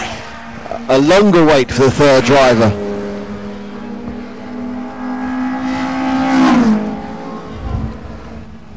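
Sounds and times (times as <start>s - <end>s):
racing car roaring past on a track: 0.0s - 8.7s
speech: 0.8s - 2.8s.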